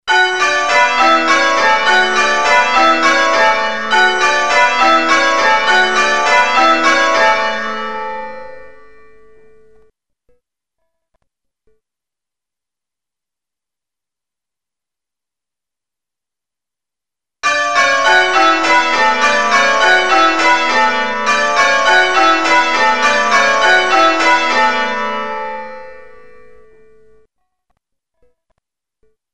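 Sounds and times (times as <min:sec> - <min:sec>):
church bells change ringing: 0:00.1 - 0:09.8, 0:17.4 - 0:27.2.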